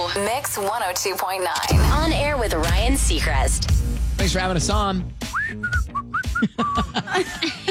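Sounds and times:
speech: 0.1s - 7.6s
person whistling a short bouncy melody: 5.3s - 7.0s
laughter: 6.3s - 7.6s.

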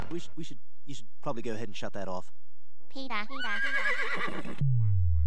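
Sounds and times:
speech: 0.3s - 5.1s
horse whinnying: 3.4s - 4.6s.

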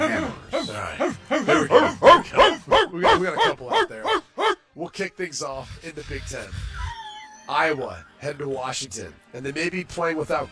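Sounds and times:
people imitating dogs barking: 0.0s - 4.6s
speech: 0.6s - 2.1s, 3.0s - 4.0s, 5.0s - 10.5s.

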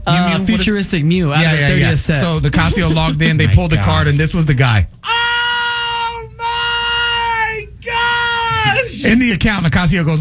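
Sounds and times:
laughter: 0.0s - 9.4s
speech: 0.1s - 5.0s, 9.1s - 10.1s
man screaming excitedly on a stream: 5.0s - 9.2s.

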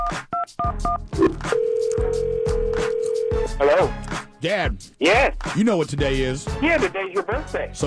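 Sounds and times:
telephone keypad tones dialing a number: 0.6s - 3.4s
speech: 3.8s - 7.8s.

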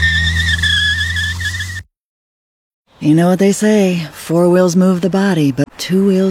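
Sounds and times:
car tires squealing as the car pulls away hard: 0.0s - 1.8s
low car engine rumble: 0.0s - 1.8s
speech: 3.0s - 6.3s.

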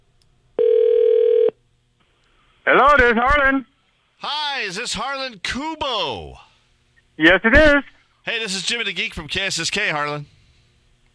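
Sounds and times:
ringback tone of an outgoing phone call: 0.6s - 1.5s
speech: 2.6s - 6.5s, 7.2s - 10.4s.

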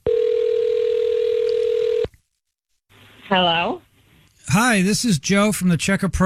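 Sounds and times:
steady telephone dial tone: 0.0s - 2.1s
speech: 3.3s - 3.8s, 4.5s - 6.2s.

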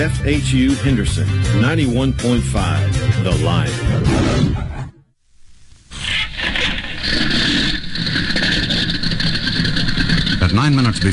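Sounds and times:
speech: 0.0s - 4.8s, 10.6s - 11.1s
small single engine of a gray-white propeller monoplane starting: 5.9s - 11.1s.

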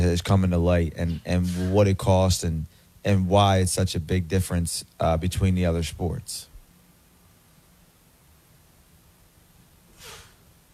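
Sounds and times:
speech: 0.0s - 6.5s
sneeze during an allergy sneezing fit: 1.4s - 1.8s, 10.0s - 10.4s.

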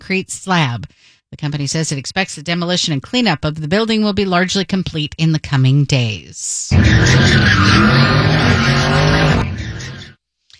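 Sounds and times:
speech: 0.1s - 9.6s
car engine roaring: 6.7s - 10.2s
tires skidding as a car spins in circles: 6.7s - 10.2s.

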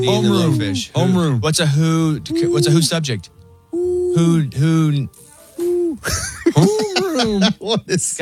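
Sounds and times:
person imitating owl hoots: 0.0s - 1.2s, 2.2s - 3.0s, 3.7s - 4.6s, 5.6s - 7.2s
speech: 0.0s - 5.3s, 5.9s - 8.2s
laughter: 6.0s - 8.2s.

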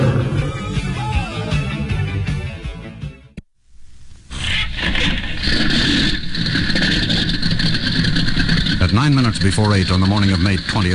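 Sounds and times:
9-foot monoplane propeller spinning up into a steady droning roar: 0.0s - 1.9s, 5.2s - 10.9s
loud rumbling: 0.0s - 2.0s, 3.8s - 10.9s
small single engine of a gray-white monoplane starting up at Roosevelt Field New York: 4.3s - 10.9s
speech: 9.1s - 10.9s.

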